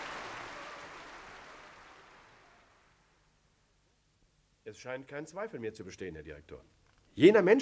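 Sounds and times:
crowd applauding: 0:00.0 - 0:03.1
speech: 0:04.7 - 0:07.6.

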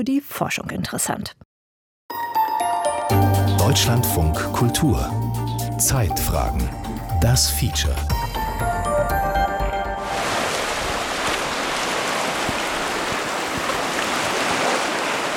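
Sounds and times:
speech: 0:00.0 - 0:01.4, 0:03.1 - 0:08.4
musical tone: 0:02.1 - 0:10.2
waves breaking against rocks: 0:10.1 - 0:15.3.

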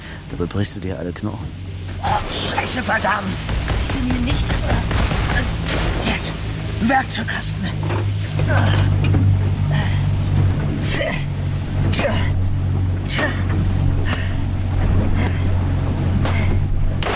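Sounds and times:
jet-propelled boat engine roaring at speed: 0:00.0 - 0:17.0
speech: 0:00.3 - 0:09.2, 0:11.9 - 0:12.3, 0:13.1 - 0:13.6.

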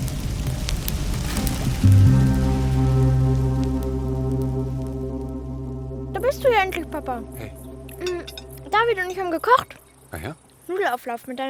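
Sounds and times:
crackling fire spreading: 0:00.0 - 0:10.9
deep droning tone: 0:02.4 - 0:10.2
speech: 0:06.4 - 0:11.4.

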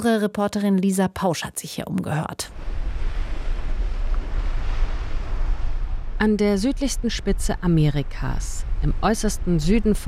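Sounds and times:
speech: 0:00.0 - 0:02.8, 0:06.2 - 0:10.0
strong wind on the Atlantic coast: 0:02.5 - 0:10.0
surf crashing on the Atlantic coast: 0:02.5 - 0:10.0.

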